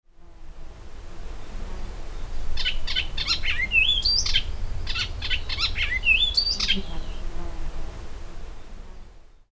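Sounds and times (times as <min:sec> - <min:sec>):
Hypolais icterina icterine warbler singing: 0:01.4 - 0:07.4.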